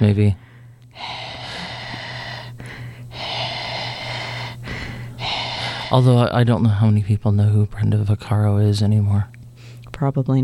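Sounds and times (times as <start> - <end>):
speech: 0.0 - 1.2, 5.9 - 9.4, 10.0 - 10.4
congested heavy breathing: 0.4 - 6.3.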